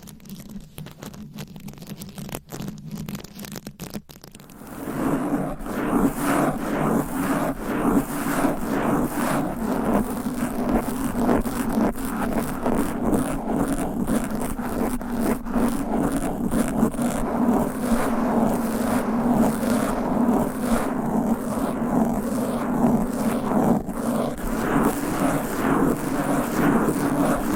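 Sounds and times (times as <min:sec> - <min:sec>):
fast aggressive scratching with nails on microphone covers: 0:00.0 - 0:27.5.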